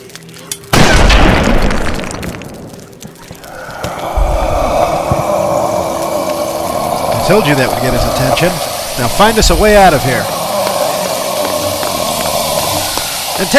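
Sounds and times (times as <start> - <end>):
gunshot: 0.8 - 2.2
rumbling roar: 3.4 - 13.5
heavy surge of noise: 3.5 - 13.5
speech: 7.3 - 10.3, 13.4 - 13.5.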